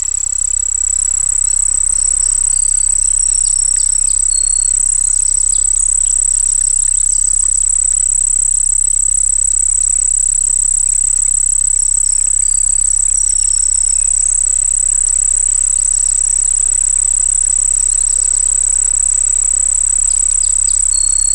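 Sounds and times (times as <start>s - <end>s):
crickets singing by a pond: 0.0s - 21.3s
faint chirps and clicks: 0.1s - 8.9s, 19.5s - 21.3s.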